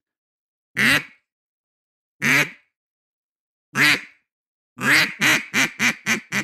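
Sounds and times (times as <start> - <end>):
duck call blown in quacks: 0.8 - 1.2, 2.2 - 2.6, 3.8 - 4.2, 4.8 - 6.4.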